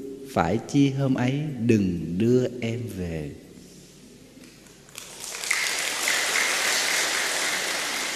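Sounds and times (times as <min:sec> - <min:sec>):
speech: 0:00.4 - 0:03.4
audience applause: 0:05.0 - 0:08.1.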